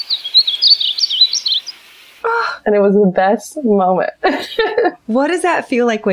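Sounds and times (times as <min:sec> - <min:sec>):
bird singing: 0:00.0 - 0:02.0
speech: 0:02.7 - 0:06.1
laughter: 0:04.2 - 0:05.0.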